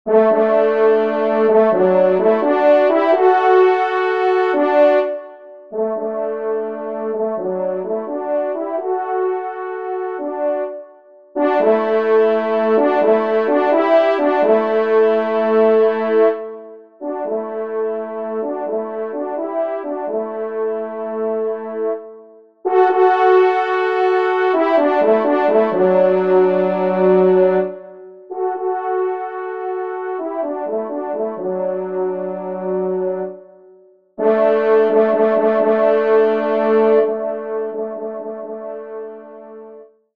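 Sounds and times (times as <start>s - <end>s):
hunting horn playing a waltz, second horn part: 0.1s - 10.8s, 11.4s - 22.0s, 22.7s - 33.4s, 34.2s - 39.7s.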